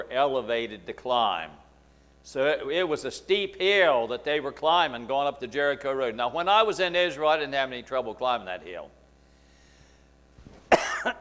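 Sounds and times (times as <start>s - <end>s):
speech: 0.1s - 1.6s, 2.2s - 9.0s, 11.0s - 11.2s
person coughing: 10.7s - 11.2s
raspy throat clearing: 10.7s - 11.2s.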